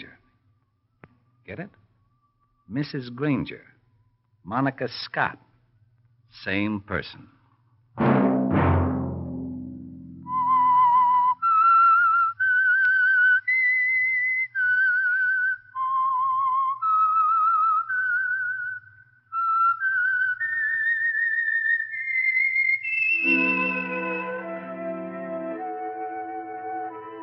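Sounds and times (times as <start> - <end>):
speech: 1.5 - 1.8, 2.7 - 3.8, 4.4 - 5.5, 6.3 - 7.4
full orchestral chord: 8.0 - 10.5, 23.2 - 27.2
deep booming hits: 8.0 - 10.8
whistled tune: 10.2 - 27.2.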